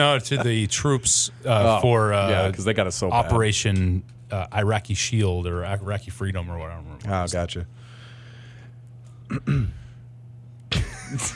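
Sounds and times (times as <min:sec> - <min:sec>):
speech: 0:00.0 - 0:07.9, 0:09.3 - 0:09.8, 0:11.1 - 0:11.3
person clearing throat in rough gravelly bursts: 0:09.3 - 0:09.9.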